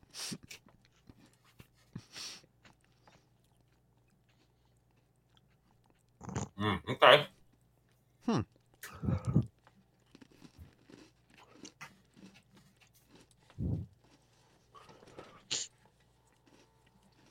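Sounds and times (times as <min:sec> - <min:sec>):
chewing a crunchy snack: 0:00.0 - 0:06.6, 0:07.3 - 0:17.2
quiet mouth sounds: 0:06.2 - 0:07.3, 0:08.2 - 0:09.5, 0:13.5 - 0:13.9
speech: 0:06.6 - 0:07.3.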